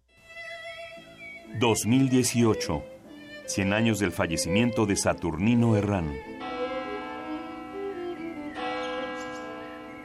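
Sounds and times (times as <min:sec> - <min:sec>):
speech: 0:01.5 - 0:02.9, 0:03.5 - 0:06.4
cathedral bells ringing: 0:03.6 - 0:10.0.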